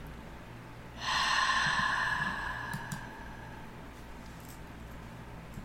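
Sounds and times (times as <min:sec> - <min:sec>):
loud airy deep inhale: 0:00.9 - 0:03.9
quieter slow exhale with a faint fluttering texture: 0:00.9 - 0:04.0.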